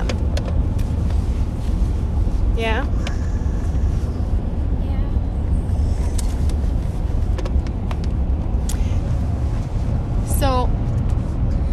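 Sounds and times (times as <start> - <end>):
road noise from inside a car being driven: 0.0 - 11.7.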